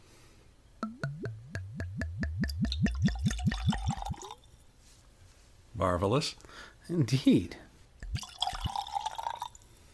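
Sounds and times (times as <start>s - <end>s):
red wine glugging out of a bottle into a glass: 0.8s - 4.5s, 8.0s - 9.6s
speech: 5.8s - 7.6s.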